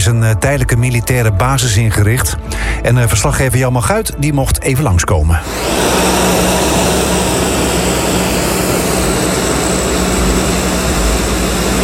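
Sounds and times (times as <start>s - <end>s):
speech: 0.0s - 6.0s
C-130 Hercules military cargo plane turboprop engines roaring: 5.3s - 11.8s.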